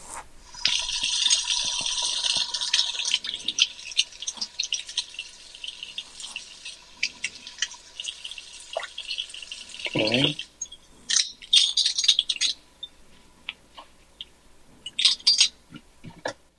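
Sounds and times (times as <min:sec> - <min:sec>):
light drips of water: 0:00.4 - 0:13.6
thin stream of water poured into a measuring spoon: 0:00.5 - 0:10.4.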